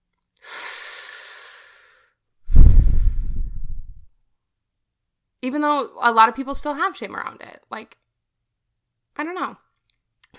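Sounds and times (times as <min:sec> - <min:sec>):
person taking a deep breath with heavy exhale: 0:00.5 - 0:04.0
speech: 0:05.4 - 0:08.0, 0:09.2 - 0:09.6.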